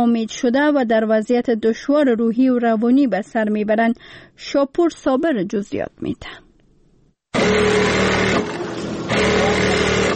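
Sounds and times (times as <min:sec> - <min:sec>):
speech: 0:00.0 - 0:06.4, 0:07.4 - 0:08.0
several electric sewing machines running: 0:07.4 - 0:10.1.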